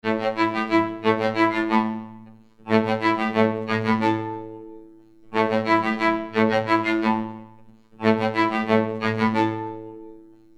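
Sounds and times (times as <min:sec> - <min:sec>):
orchestral strings: 0:00.0 - 0:10.5.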